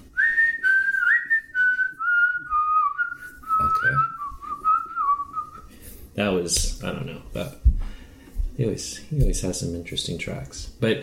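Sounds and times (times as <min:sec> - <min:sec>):
person whistling a film theme melody: 0:00.2 - 0:05.6
speech: 0:06.2 - 0:07.7, 0:08.6 - 0:11.0.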